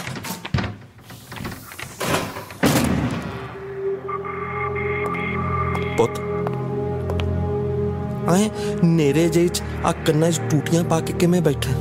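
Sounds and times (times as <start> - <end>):
door being forced or broken down: 0.0 - 3.5
sustained tonal hum: 3.5 - 11.7
speech: 6.0 - 6.3, 8.3 - 11.7.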